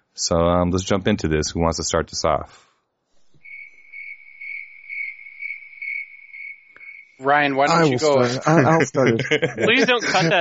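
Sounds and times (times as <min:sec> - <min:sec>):
speech: 0:00.2 - 0:02.7, 0:07.2 - 0:10.3
cricket chirping: 0:03.2 - 0:08.2
laughter: 0:07.7 - 0:10.3.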